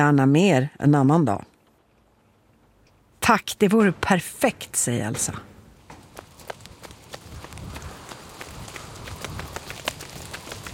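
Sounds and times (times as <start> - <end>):
speech: 0.0 - 1.5, 3.2 - 5.5
footfalls of people running in pouring rain: 5.8 - 10.7.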